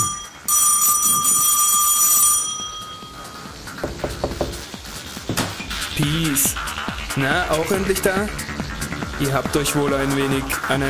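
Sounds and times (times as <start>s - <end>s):
loud shrill electric doorbell ringing in a metallic trill: 0.0s - 3.6s
knocks and clatter: 3.7s - 5.8s
speech: 6.0s - 8.4s, 9.2s - 10.8s.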